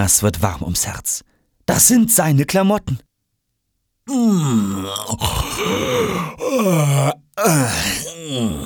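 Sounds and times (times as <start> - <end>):
speech: 0.0 - 3.1, 4.1 - 8.6
person yawning with exaggerated groans: 4.1 - 8.6.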